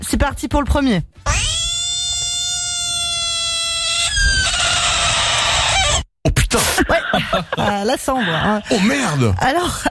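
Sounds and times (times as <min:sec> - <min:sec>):
speech: 0:00.2 - 0:01.1, 0:06.6 - 0:09.8
green frog crying to ward off a threat: 0:01.3 - 0:06.1
laughter: 0:06.6 - 0:09.2.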